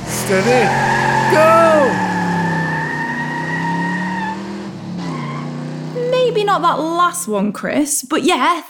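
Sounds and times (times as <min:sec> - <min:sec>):
voices imitating racing Ferrari mobility scooter engine: 0:00.0 - 0:04.3, 0:05.9 - 0:07.2
speech: 0:00.3 - 0:02.2, 0:06.4 - 0:08.6.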